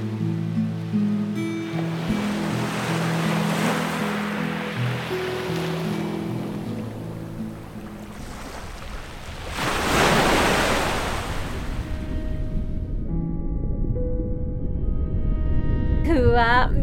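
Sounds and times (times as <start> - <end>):
low tonal music: 0.0 - 8.8, 11.6 - 16.8
ocean waves washing in: 0.0 - 13.0.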